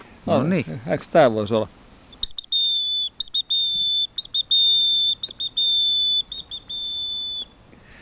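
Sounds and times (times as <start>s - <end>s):
speech: 0.2s - 1.8s
bird whistle playing great tit song: 2.1s - 7.6s.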